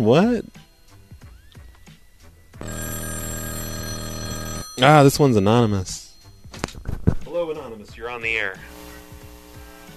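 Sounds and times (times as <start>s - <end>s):
speech: 0.0s - 0.6s, 4.8s - 6.0s, 7.4s - 8.7s
telephone bell ringing: 2.6s - 6.7s.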